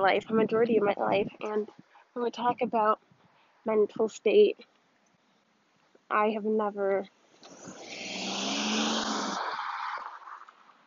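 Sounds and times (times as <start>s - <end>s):
speech: 0.0s - 4.7s, 6.1s - 7.8s
car driving past: 7.5s - 10.8s.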